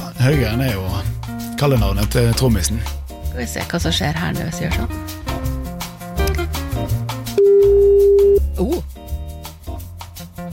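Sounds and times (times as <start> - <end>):
busy music with beats and melodic notes: 0.0 - 10.5
speech: 0.2 - 5.2, 8.6 - 8.9
steady flat phone ringing tone: 7.4 - 8.4.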